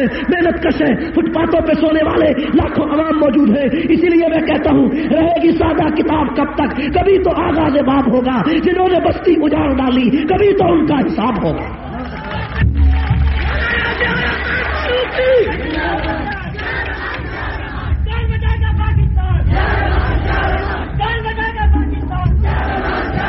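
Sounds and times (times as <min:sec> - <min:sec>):
speech: 0:00.0 - 0:12.2
crowd cheering: 0:11.6 - 0:21.3, 0:22.2 - 0:23.2
large crowd chanting political slogans in unison: 0:14.4 - 0:18.1, 0:19.2 - 0:21.0, 0:22.2 - 0:23.2.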